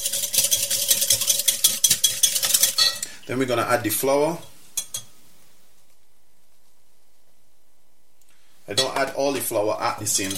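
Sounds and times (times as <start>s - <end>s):
whisking about 150 grams of puree in a bowl: 0.0s - 2.8s, 9.5s - 10.3s
faint steady hum: 0.0s - 10.3s
speech: 3.3s - 4.5s, 9.1s - 10.3s.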